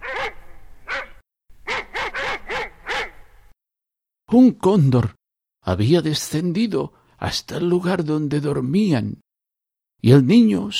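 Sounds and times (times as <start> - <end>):
dog barking at night: 0.0 - 3.2
speech: 4.3 - 9.2, 10.0 - 10.7.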